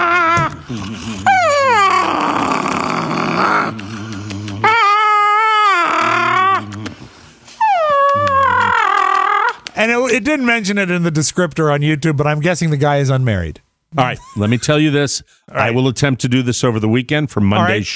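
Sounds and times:
Chihuahua mix dog grumbling howls and whines played from a video: 0.0s - 9.7s
speech: 0.7s - 1.4s, 10.2s - 17.9s.

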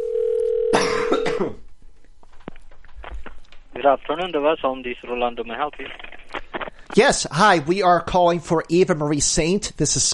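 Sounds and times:
telephone dial tone: 0.0s - 0.7s
person coughing and clearing throat: 0.7s - 1.6s
speech: 1.4s - 1.6s, 3.8s - 6.1s, 7.0s - 10.1s.

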